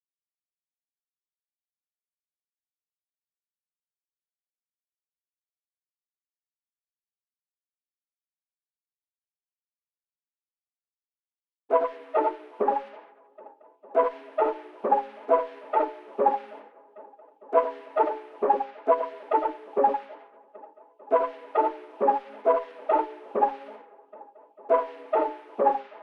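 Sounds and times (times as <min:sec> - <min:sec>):
synth pluck melody loop in C sharp minor: 0:11.7 - 0:13.0, 0:14.0 - 0:26.0.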